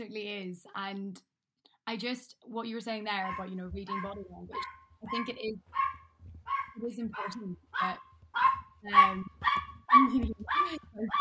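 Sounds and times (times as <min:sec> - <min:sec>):
speech: 0:00.0 - 0:01.3, 0:01.9 - 0:06.0, 0:06.8 - 0:11.1
small dog barking: 0:03.2 - 0:11.1.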